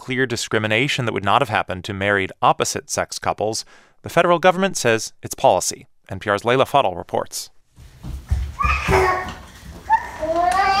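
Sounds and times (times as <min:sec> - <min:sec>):
speech: 0:00.0 - 0:07.6, 0:08.6 - 0:09.3
toddler footfalls thumping around a dining room table: 0:07.7 - 0:10.7
sixteen-month-old twin boys squealing and babbling: 0:08.3 - 0:10.7.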